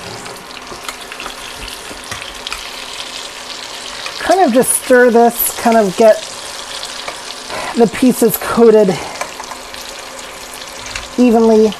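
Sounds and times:
food frying in a little oil in a pan over moderate heat: 0.0 - 11.7
speech: 4.4 - 6.3, 7.8 - 9.1, 11.2 - 11.7.

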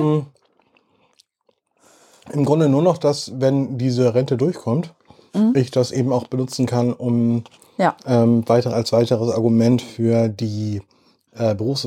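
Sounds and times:
speech: 0.0 - 0.4, 2.3 - 11.8
wet open-mouthed chewing with crunchy bites: 0.0 - 2.4, 7.4 - 8.6.

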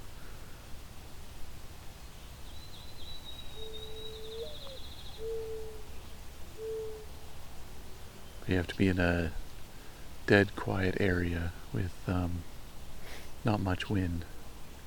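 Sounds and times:
steady hiss of noise: 0.0 - 14.8
mourning dove cooing: 3.6 - 7.2
speech: 8.5 - 9.4, 10.3 - 12.5, 13.4 - 14.4.

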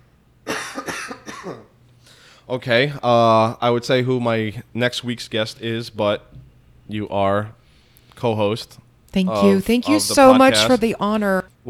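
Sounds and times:
harsh coughs with a short wheezy trail: 0.4 - 1.8
speech: 1.4 - 1.8, 2.5 - 7.6, 8.2 - 11.6.

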